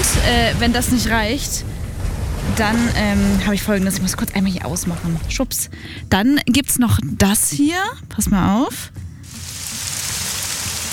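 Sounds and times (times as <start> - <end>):
summer rain pattering on a surface: 0.0 - 5.7, 9.3 - 10.9
speech: 0.2 - 1.7, 2.5 - 9.0.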